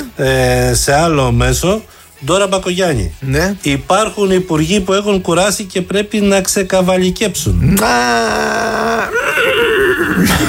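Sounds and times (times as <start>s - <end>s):
speech: 0.2s - 10.4s
person imitating a horse whinny: 7.6s - 10.4s.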